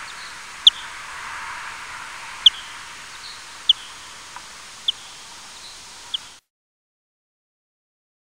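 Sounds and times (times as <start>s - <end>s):
bat calls: 0.0s - 6.4s
soft steady hiss: 0.0s - 6.4s.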